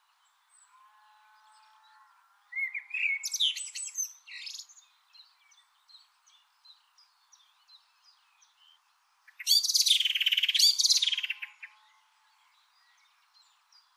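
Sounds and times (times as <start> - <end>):
Eurasian blackbird Turdus merula singing: 2.5 - 5.6, 9.3 - 11.8.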